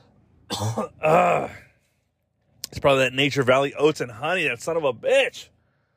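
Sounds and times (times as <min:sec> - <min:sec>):
person clearing throat from something caught in the throat: 0:00.5 - 0:01.7
speech: 0:00.6 - 0:01.6, 0:02.8 - 0:05.6.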